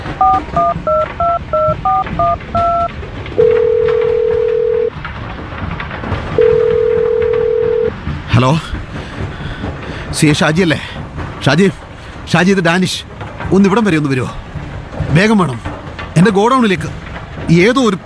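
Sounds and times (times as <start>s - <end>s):
telephone keypad dialing tones: 0.2s - 4.9s
telephone ringing tones: 0.2s - 4.9s, 6.4s - 7.9s
speech: 8.4s - 8.7s, 10.1s - 14.5s, 15.1s - 18.0s.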